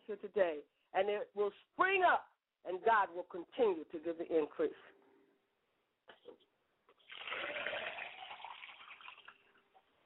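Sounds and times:
speech: 0:00.1 - 0:05.0
water pouring into a glass: 0:07.0 - 0:09.7.

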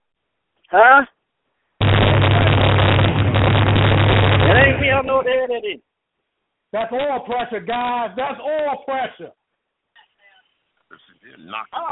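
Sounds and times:
speech: 0:00.7 - 0:01.2, 0:04.6 - 0:05.9, 0:06.7 - 0:09.4, 0:10.9 - 0:11.9
engine cranked up: 0:01.8 - 0:05.1.

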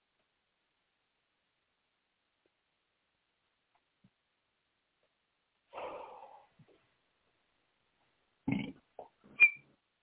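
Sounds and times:
person burping: 0:08.5 - 0:08.8
short sharp whistled note: 0:09.4 - 0:09.6.

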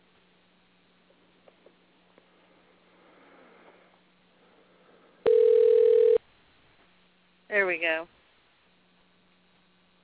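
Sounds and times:
telephone call ringing tone over a phone line: 0:05.3 - 0:06.2
speech: 0:07.7 - 0:08.2.

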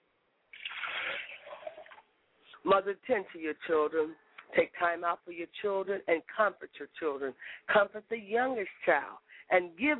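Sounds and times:
liquid poured as a libation in a remembrance ritual: 0:00.5 - 0:02.1
speech: 0:02.7 - 0:09.9.

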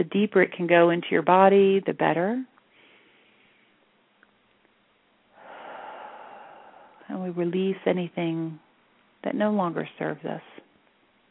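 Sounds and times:
speech: 0:00.0 - 0:02.5, 0:07.1 - 0:08.6, 0:09.2 - 0:10.6
deep cleansing breath in a guided breathing exercise: 0:02.7 - 0:03.8, 0:05.3 - 0:07.1.

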